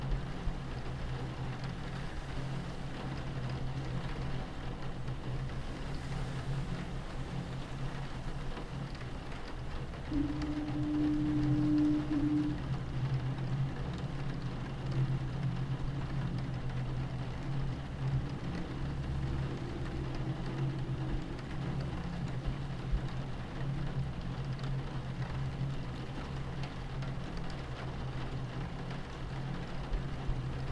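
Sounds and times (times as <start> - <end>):
rain: 0.0 - 30.7
deep constant rumble: 0.1 - 30.7
ocean waves: 0.2 - 24.3
mid-low foghorn tone: 9.9 - 23.8.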